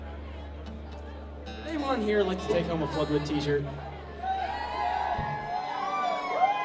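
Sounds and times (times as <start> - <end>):
speech: 1.8 - 3.9
concert crowd screaming and cheering: 2.9 - 6.6.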